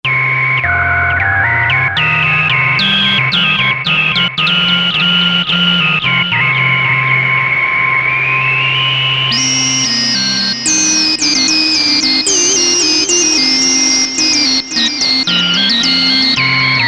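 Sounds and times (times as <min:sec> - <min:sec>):
synthesizer: 0:00.0 - 0:16.8
whistle: 0:00.1 - 0:16.8.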